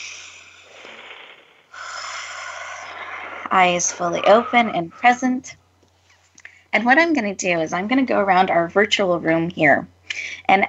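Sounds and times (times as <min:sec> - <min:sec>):
group taking a deep breath together: 0:01.7 - 0:03.5
speech: 0:03.5 - 0:05.6, 0:06.8 - 0:10.6.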